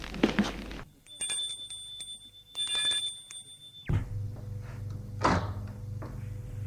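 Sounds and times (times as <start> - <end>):
low hum of room noise: 0.0 - 6.6
electric doorbell ringing with a buzzing tone: 1.0 - 3.9
door opening with a clunk: 4.9 - 6.2.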